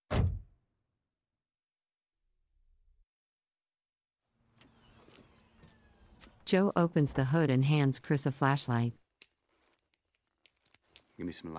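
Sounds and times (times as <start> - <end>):
door shut with a heavy thud: 0.1 - 0.5
steady mechanical hum: 4.4 - 6.9
speech: 6.5 - 9.0, 11.2 - 11.5.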